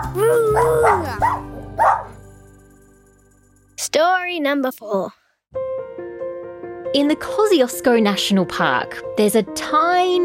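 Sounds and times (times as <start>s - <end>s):
dog whining: 0.0s - 2.1s
speech: 3.9s - 5.2s, 6.9s - 10.2s.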